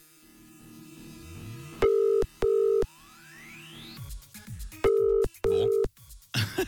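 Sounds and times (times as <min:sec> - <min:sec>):
ringing line tone of an unanswered telephone call: 0:01.8 - 0:02.9, 0:04.9 - 0:05.9.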